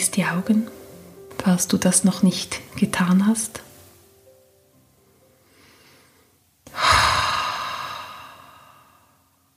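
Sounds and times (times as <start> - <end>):
speech: 0.2 - 0.8, 1.4 - 3.7
long deep breath during a guided relaxation meditation: 5.2 - 9.5.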